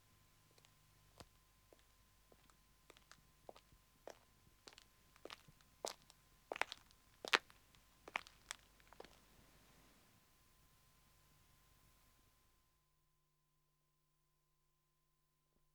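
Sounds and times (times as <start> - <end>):
man's footsteps approaching on a country road: 0.5 - 9.2.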